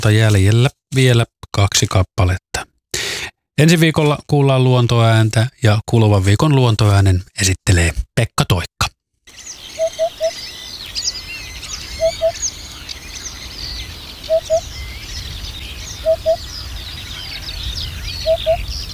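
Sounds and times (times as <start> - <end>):
speech: 0.0 - 2.7, 3.6 - 8.8
birds singing and chirping at a golf course on a windy rainy early-summer midday: 9.3 - 18.9
low rumble of gusting wind at a golf course: 10.6 - 18.9.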